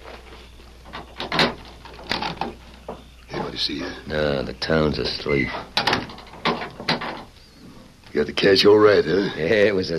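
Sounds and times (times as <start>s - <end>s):
low hiss: 0.0s - 9.9s
door being unlatched and opened: 0.9s - 3.8s, 5.0s - 7.4s
speech: 3.6s - 5.7s, 8.2s - 9.9s.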